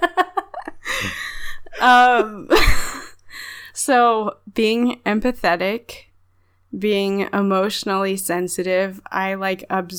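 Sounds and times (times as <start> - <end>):
heavy breathing: 0.8 - 1.8, 3.3 - 3.7
loud voiced gasping breaths: 0.8 - 1.8
speech: 1.8 - 2.8, 3.8 - 6.1, 6.7 - 9.9.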